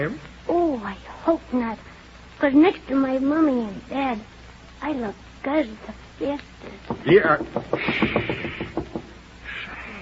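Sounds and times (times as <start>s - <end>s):
speech: 0.0s - 9.8s
firm knocking on a door: 6.9s - 9.2s.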